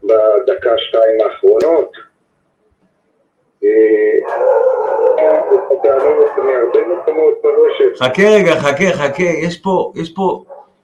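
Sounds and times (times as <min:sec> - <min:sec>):
speech: 0:00.1 - 0:02.1, 0:06.4 - 0:10.5
dogs barking and howling harshly: 0:04.2 - 0:07.4.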